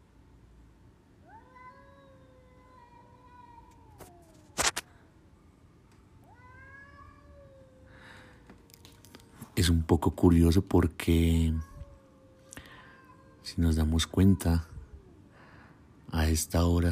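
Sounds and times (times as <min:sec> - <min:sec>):
low hum: 0:00.0 - 0:16.8
cats meowing like crying children: 0:01.2 - 0:04.9, 0:06.1 - 0:09.6, 0:11.1 - 0:15.3
sharp click or knock: 0:04.6 - 0:04.8
speech: 0:09.6 - 0:11.7, 0:13.6 - 0:14.7, 0:16.3 - 0:16.8.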